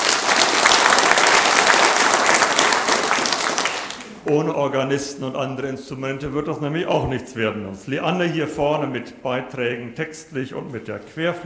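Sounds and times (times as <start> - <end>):
audience applause in a reverberant church: 0.0 - 4.3
speech: 4.3 - 11.4.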